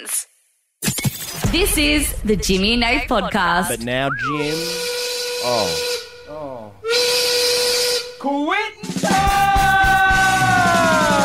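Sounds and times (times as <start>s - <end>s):
speech: 1.5s - 7.2s, 8.2s - 9.4s
steam whistle blowing: 4.2s - 10.8s.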